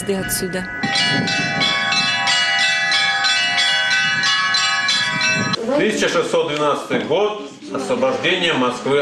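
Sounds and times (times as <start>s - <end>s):
speech: 0.0s - 1.4s, 5.7s - 9.0s
church bells of a mobile belfry pealing during a religious procession: 0.0s - 5.6s.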